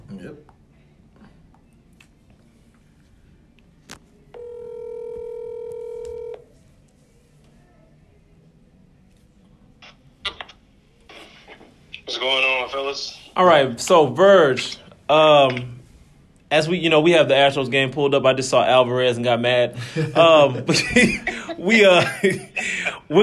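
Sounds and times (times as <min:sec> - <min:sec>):
speech: 0:00.2 - 0:00.6, 0:13.4 - 0:15.8, 0:16.5 - 0:23.2
steady electronic phone ringback tone as a call is placed: 0:04.3 - 0:06.5
laughter: 0:19.7 - 0:23.2.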